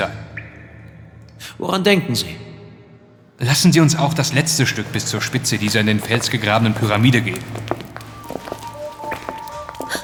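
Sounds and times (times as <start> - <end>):
speech: 0.0 - 0.2, 1.4 - 2.5, 3.4 - 7.8
footsteps of someone running away through an escape tunnel in a rock-carved pyramid: 4.3 - 10.0.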